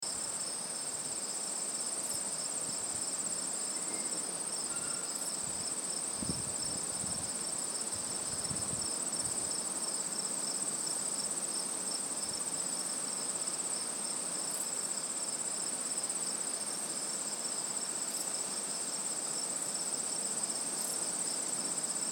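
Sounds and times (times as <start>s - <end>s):
crickets chirping at old tower site on Isle Royale: 0.1s - 22.0s.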